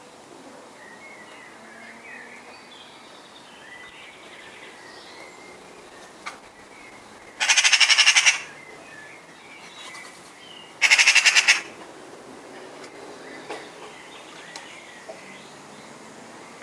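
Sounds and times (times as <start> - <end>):
Eurasian magpie Pica pica chattering rattles: 7.2 - 8.6, 9.7 - 11.8.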